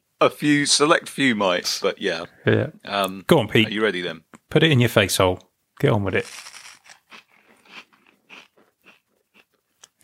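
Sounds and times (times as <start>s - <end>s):
speech: 0.2s - 6.5s
someone chewing a dry cereal snack: 6.2s - 10.0s.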